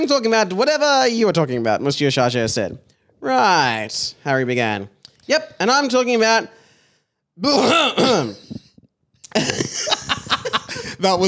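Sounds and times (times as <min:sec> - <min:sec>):
speech: 0:00.0 - 0:06.6, 0:07.4 - 0:08.5, 0:11.0 - 0:11.2
person mimicking a deliberate pointed cough: 0:07.5 - 0:08.6
breathy choppy stifled laughter: 0:09.3 - 0:11.0.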